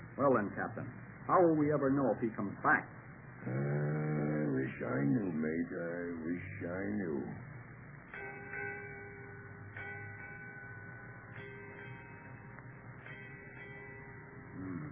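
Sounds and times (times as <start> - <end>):
speech: 0.2 - 7.5
ship's bell striking eight bells: 8.1 - 14.6.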